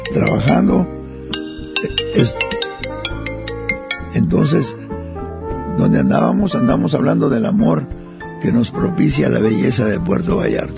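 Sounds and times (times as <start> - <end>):
telephone ringing with a melodic ringtone: 0.0 - 0.8, 1.4 - 4.5
speech: 0.1 - 1.0, 1.8 - 2.7, 4.1 - 5.0, 5.8 - 10.7.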